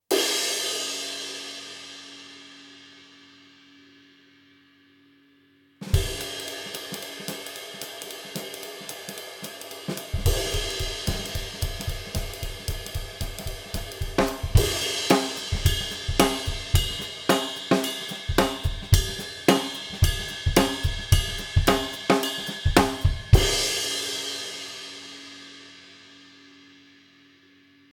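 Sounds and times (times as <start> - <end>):
bebop ride cymbal: 6.2 - 25.3.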